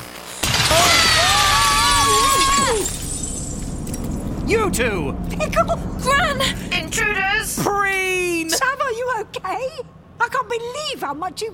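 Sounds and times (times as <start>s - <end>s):
window glass shattering: 0.4s - 4.3s
speech: 4.5s - 11.5s.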